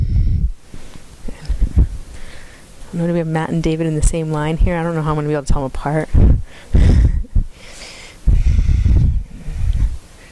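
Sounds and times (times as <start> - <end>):
deep ujjayi yoga breathing through the nose with narrowed throat: 0.0 - 2.8, 6.4 - 10.3
speech: 3.0 - 6.4.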